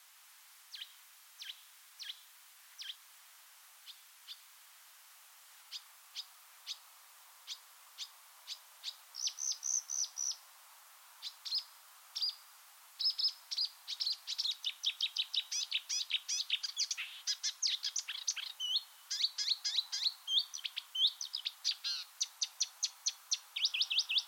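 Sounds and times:
marsh warbler singing sharp high chips: 7.5 - 10.4, 13.0 - 24.2.

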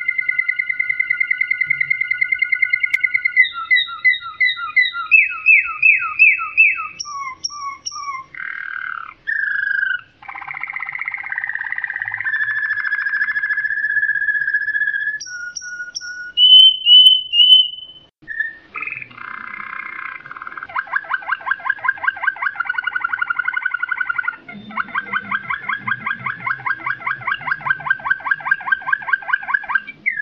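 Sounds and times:
Waterslager canary singing: 0.0 - 30.2.

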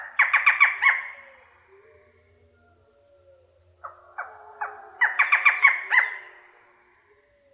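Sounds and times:
Barred forest falcon calling with harsh barking notes: 0.0 - 1.2, 3.8 - 6.4.

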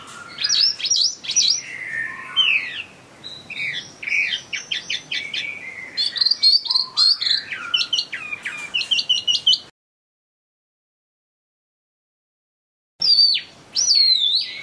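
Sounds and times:
Chinese hwamei song with fast varied whistles: 0.0 - 9.7, 13.0 - 14.6.

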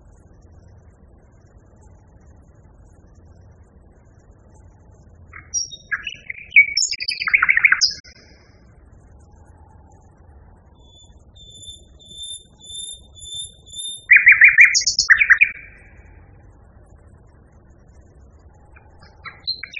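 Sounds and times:
common nightingale singing: 5.3 - 8.2, 10.8 - 16.1, 18.7 - 19.7.

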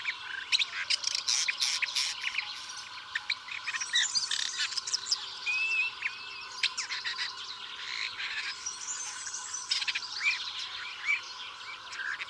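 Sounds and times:
woodchat shrike song: 0.0 - 12.2.

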